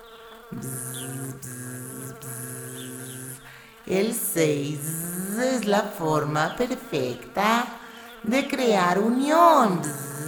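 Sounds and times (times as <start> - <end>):
bee buzzing as it flies: 0.0 - 10.2
speech: 0.5 - 1.6, 3.9 - 10.0.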